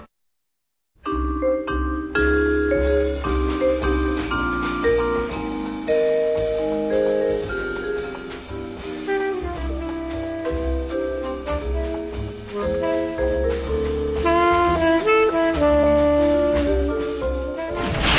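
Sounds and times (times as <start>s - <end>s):
short instrumental musical bridge: 1.1s - 18.0s
brief burst of noise: 17.7s - 18.1s.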